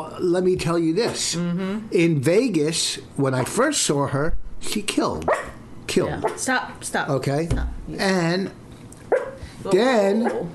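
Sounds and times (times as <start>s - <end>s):
speech: 0.1s - 8.6s, 9.6s - 10.5s
small female dog giving a wavering whiny bark: 5.3s - 5.6s, 9.1s - 9.4s.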